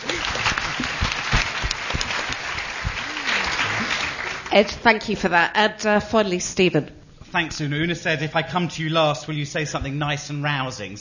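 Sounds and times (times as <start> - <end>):
large audience clapping: 0.0 - 5.0
speech: 4.5 - 10.9.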